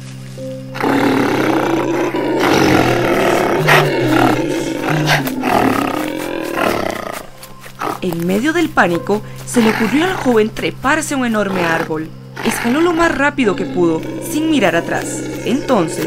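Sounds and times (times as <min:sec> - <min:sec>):
big monkey roaring: 0:00.8 - 0:08.2, 0:11.5 - 0:16.0
speech: 0:08.1 - 0:16.0.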